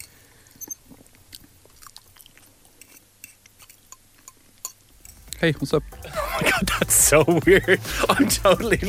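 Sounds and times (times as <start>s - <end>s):
man chewing while eating pasta: 0.1s - 5.4s
speech: 5.4s - 8.8s
laughter: 6.0s - 8.8s.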